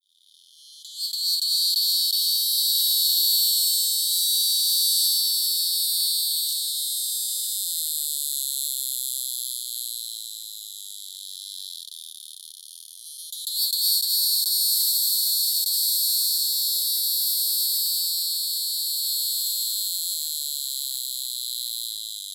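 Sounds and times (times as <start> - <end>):
Neocicada hieroglyphica cicadas, filtered: 0.0 - 22.3.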